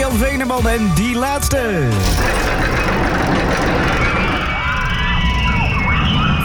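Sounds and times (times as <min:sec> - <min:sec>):
speech: 0:00.2 - 0:02.8
roller coaster racing past: 0:02.0 - 0:06.4
whining screeching tones of a roller coaster: 0:02.0 - 0:06.4.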